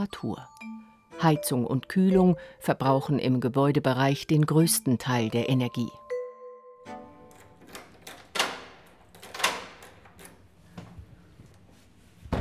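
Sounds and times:
speech: 0.0s - 0.6s, 1.2s - 6.0s
heavy door being worked open: 7.1s - 10.8s.

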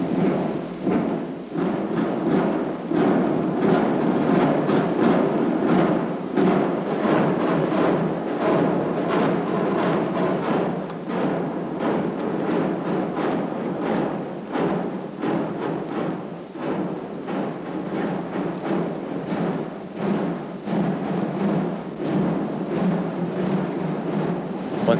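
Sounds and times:
snare drums and drums of two marching columns of a drum corps rolling: 0.0s - 24.9s.

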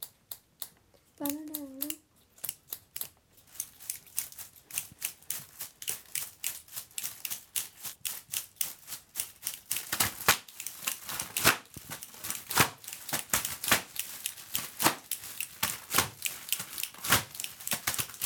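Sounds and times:
several pairs of scissors snipping: 0.0s - 18.2s
short vocal sound from a child: 1.2s - 2.0s.

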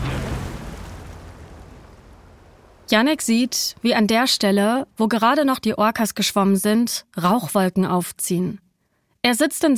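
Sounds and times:
low rumbling roar: 0.0s - 3.1s
explosives detonating near the water: 0.0s - 4.0s
speech: 2.9s - 8.6s, 9.2s - 9.7s.

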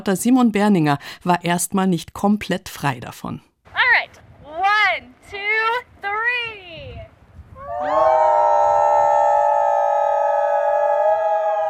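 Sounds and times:
speech: 0.0s - 4.2s
faint outdoor rumble: 3.6s - 8.4s
visitors howling together at a wolf and wildlife center in Colorado: 7.6s - 11.6s.

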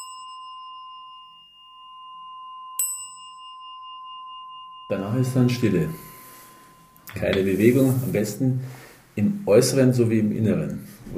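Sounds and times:
meditation stick bell rung to begin a meditation: 0.0s - 8.7s
speech: 4.9s - 6.1s, 7.1s - 11.1s.

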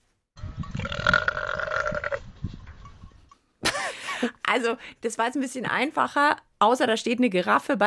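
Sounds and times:
quieter gurgling: 0.4s - 4.3s
long deep throaty animal burp: 0.7s - 2.3s
speech: 4.2s - 7.8s.

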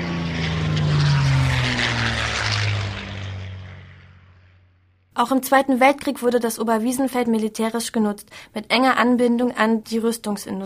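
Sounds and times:
propeller plane engine droning as the aircraft passes: 0.0s - 5.1s
speech: 5.2s - 10.6s.

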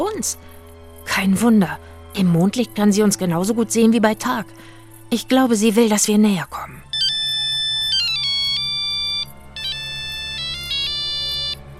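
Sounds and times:
speech: 0.0s - 6.8s
phone alarm ringtone melody of stepped electronic tones: 6.9s - 11.7s.

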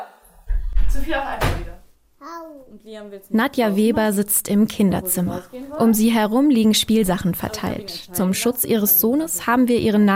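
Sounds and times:
door in a child's room opening and closing: 0.4s - 1.8s
speech: 1.0s - 10.1s.

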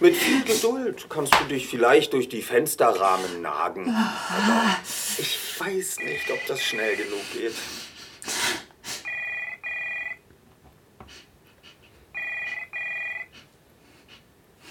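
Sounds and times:
speech: 0.0s - 8.4s
telephone ringing with electronic trills: 6.0s - 7.2s, 9.0s - 10.2s, 12.1s - 13.4s.

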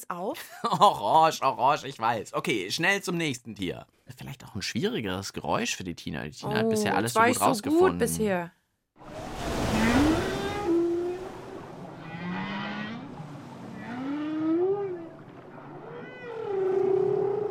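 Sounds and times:
speech: 0.0s - 8.6s
constant rushing water wash: 9.0s - 17.4s
whale song: 9.1s - 17.4s.

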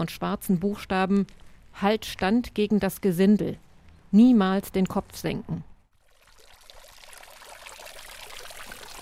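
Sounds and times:
speech: 0.0s - 5.7s
water splashing and trickling: 6.0s - 9.0s.

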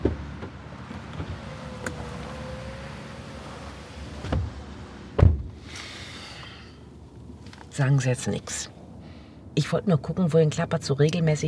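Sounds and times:
car door slamming: 0.0s - 5.6s
person settling into a car with rustling and shifting: 0.0s - 6.2s, 6.9s - 7.8s
speech: 7.8s - 8.8s, 9.6s - 11.4s.

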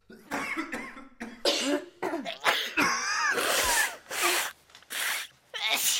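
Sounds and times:
harsh hacking coughing during the winter cold season: 0.1s - 4.5s.

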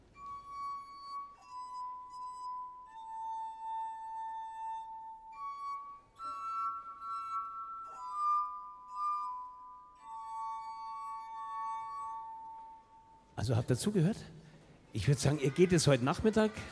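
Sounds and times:
wet fingers rubbing rims of water-tuned musical glasses: 0.1s - 13.4s
speech: 13.4s - 16.6s.

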